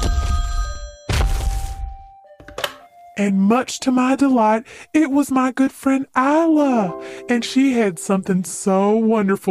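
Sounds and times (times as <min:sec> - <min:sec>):
telephone bell ringing: 0:00.0 - 0:01.1
speech: 0:03.2 - 0:09.4.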